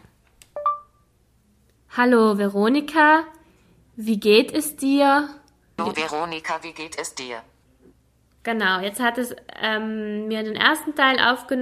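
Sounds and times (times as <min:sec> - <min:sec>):
phone voice-input prompt two-note electronic beep: 0:00.6 - 0:01.0
speech: 0:02.0 - 0:03.4, 0:04.0 - 0:07.5, 0:08.4 - 0:11.6.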